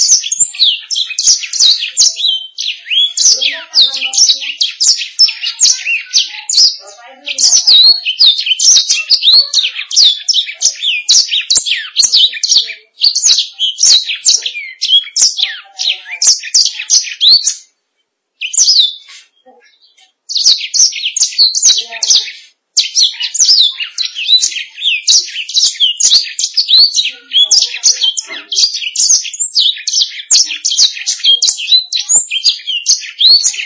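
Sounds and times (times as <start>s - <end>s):
canary singing in quick high chirps and trills: 0.0s - 33.6s.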